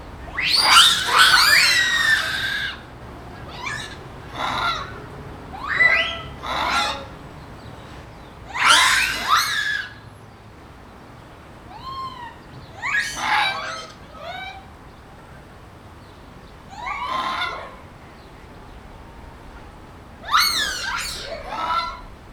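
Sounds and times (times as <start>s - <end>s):
group of aroused Macaca fuscata Japanese macaques giving loud calls: 0.0s - 10.1s, 11.7s - 14.8s, 16.6s - 18.0s, 19.2s - 22.3s.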